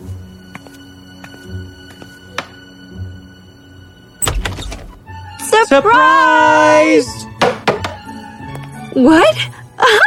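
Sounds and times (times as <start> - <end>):
soft sustained musical backdrop: 0.0 - 10.0
speech: 5.6 - 7.2, 9.0 - 10.0
knocking on a bedroom door: 7.4 - 8.0.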